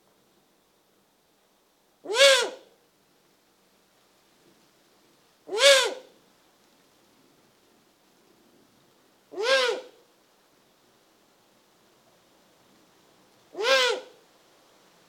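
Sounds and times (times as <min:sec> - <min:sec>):
Eurasian eagle-owl rasping call: 0:02.0 - 0:02.7, 0:05.5 - 0:06.1, 0:09.3 - 0:10.0, 0:13.5 - 0:14.2.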